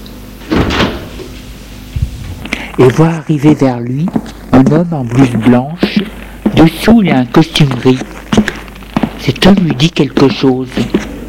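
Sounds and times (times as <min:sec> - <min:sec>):
door opening: 0:00.4 - 0:01.4
speech: 0:02.8 - 0:08.6, 0:09.2 - 0:11.1.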